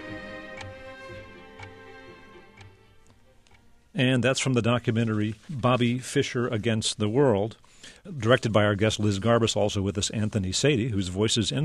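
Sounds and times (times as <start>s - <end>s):
chess clock ticking during a chess game: 0.0s - 5.0s
speech: 4.0s - 11.6s.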